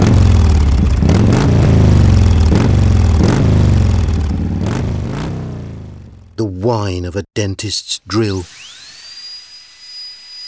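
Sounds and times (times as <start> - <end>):
motorbike engine revving: 0.0 - 6.4
speech: 6.7 - 8.6.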